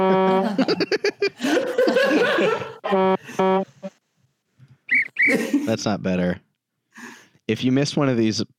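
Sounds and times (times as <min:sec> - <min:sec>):
air horn sound effect from soundboard: 0:00.0 - 0:00.6, 0:02.8 - 0:03.9
laughter: 0:00.0 - 0:03.6, 0:05.2 - 0:05.8
speech: 0:00.6 - 0:01.5, 0:05.7 - 0:06.5, 0:07.5 - 0:08.5.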